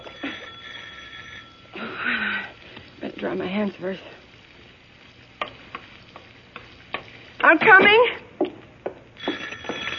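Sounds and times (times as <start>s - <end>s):
electric doorbell with a metallic buzz: 0.0s - 1.9s, 9.2s - 9.9s
speech: 3.2s - 4.2s, 7.4s - 8.2s.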